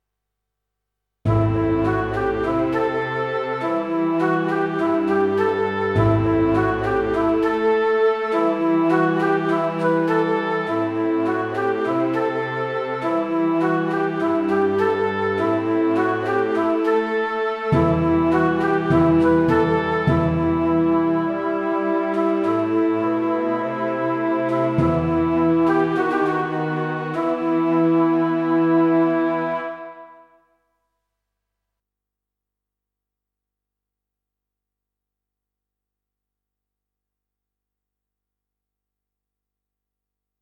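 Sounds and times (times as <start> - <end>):
symphonic orchestra riff in E minor: 1.3 - 30.2.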